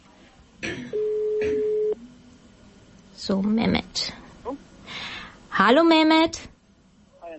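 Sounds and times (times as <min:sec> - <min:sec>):
electronic ringback tone while a phone call connects: 0:01.0 - 0:02.0
speech: 0:03.2 - 0:04.6, 0:05.6 - 0:06.5.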